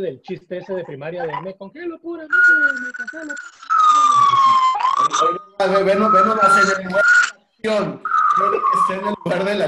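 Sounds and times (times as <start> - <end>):
speech: 0.0 - 9.6
emergency vehicle siren wailing: 2.3 - 7.3, 8.0 - 9.6
busy street noise: 2.3 - 9.6.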